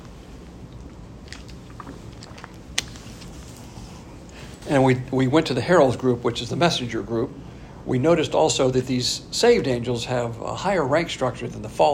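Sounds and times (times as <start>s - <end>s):
low steady hum: 0.0s - 11.9s
sipping and swallowing water: 0.3s - 4.6s
soft wet mouth clicks: 0.6s - 4.4s
speech: 4.7s - 11.9s.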